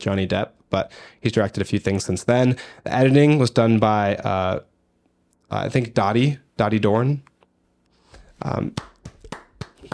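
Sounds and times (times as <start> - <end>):
speech: 0.0 - 4.7, 5.5 - 7.3, 8.4 - 8.9
hands clapping in applause: 8.6 - 9.9.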